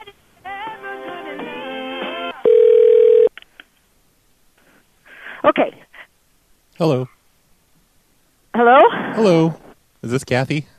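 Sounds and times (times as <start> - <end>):
telephone ring tone: 2.4 - 3.3
wavering electronic telephone melody: 2.5 - 3.3
speech: 5.6 - 5.9, 6.8 - 7.2, 8.6 - 10.7.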